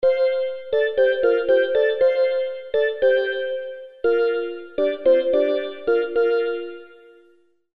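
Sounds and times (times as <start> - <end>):
synth lead melody: 0.0 - 7.4.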